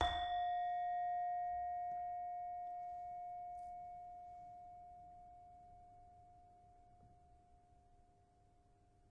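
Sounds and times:
Indonesian saron metallophone notes: 0.0s - 4.0s.

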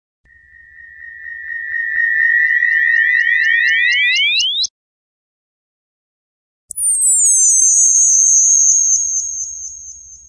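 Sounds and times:
atmospheric ambient sounds: 0.3s - 4.7s.

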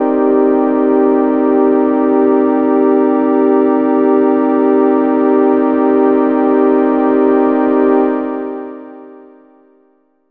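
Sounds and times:
transcendent synth pad: 0.0s - 9.1s.

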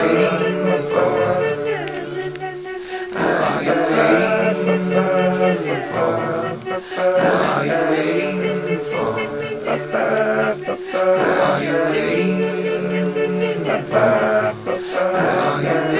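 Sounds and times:
folksy vocals: 0.0s - 15.9s.

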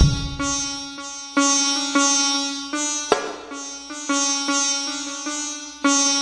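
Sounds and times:
kick drum: 0.0s - 0.7s
sitar world loop: 0.0s - 6.2s.

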